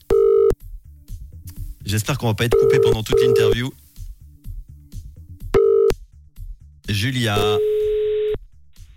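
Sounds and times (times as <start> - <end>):
loud steady telephone tone: 0.1 - 0.6, 2.6 - 3.6, 5.6 - 5.9, 7.4 - 8.4
speech: 1.9 - 3.8, 6.9 - 7.7.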